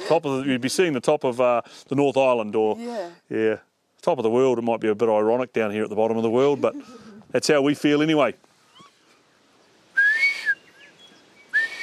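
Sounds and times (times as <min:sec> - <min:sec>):
speech: 0:00.1 - 0:08.4
person whistling imitating a whio blue duck call: 0:10.0 - 0:10.6, 0:11.5 - 0:11.8.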